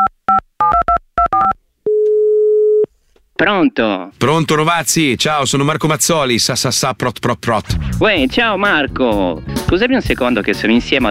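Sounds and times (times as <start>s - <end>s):
telephone ringing tone of an outgoing call: 0.7s - 2.9s
speech: 3.4s - 11.0s.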